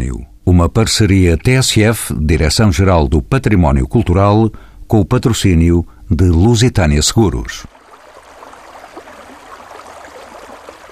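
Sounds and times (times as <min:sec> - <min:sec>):
speech: 0:00.2 - 0:07.8
small mountain stream babbling and gurgling: 0:07.7 - 0:10.9.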